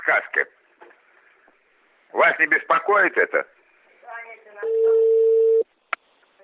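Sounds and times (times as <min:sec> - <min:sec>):
speech: 0:00.0 - 0:00.6, 0:02.1 - 0:03.5, 0:04.6 - 0:05.0
telephone tone: 0:04.6 - 0:05.6.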